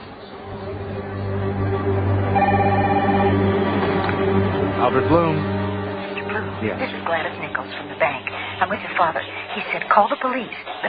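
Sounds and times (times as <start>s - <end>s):
low droning hum: 0.3s - 10.2s
telephone ringing: 2.4s - 3.4s
speech: 4.9s - 5.6s, 6.6s - 10.8s.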